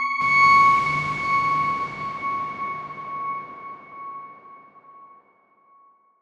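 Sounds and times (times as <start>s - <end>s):
soft synth note: 0.2s - 5.1s.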